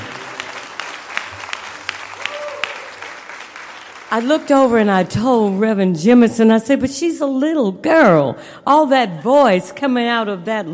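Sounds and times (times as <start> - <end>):
crowd audience applause: 0.0 - 5.6
speech: 4.1 - 10.7.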